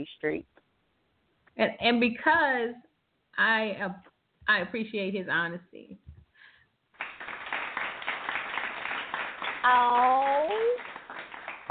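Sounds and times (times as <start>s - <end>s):
speech: 0.0s - 0.6s, 1.6s - 6.0s, 9.6s - 10.9s
canned applause sound effect from a soundboard button: 7.0s - 11.6s.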